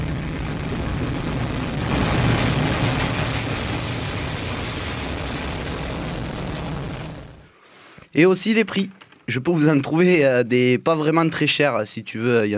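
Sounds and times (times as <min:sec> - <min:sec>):
rocket taking off: 0:00.0 - 0:07.5
speech: 0:08.2 - 0:12.5.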